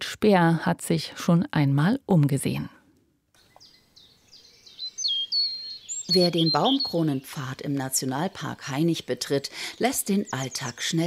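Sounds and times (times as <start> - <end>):
speech: 0.2 - 2.8, 6.1 - 11.0
birds singing in a beech and linden forest in Hainich National Park: 3.4 - 11.0.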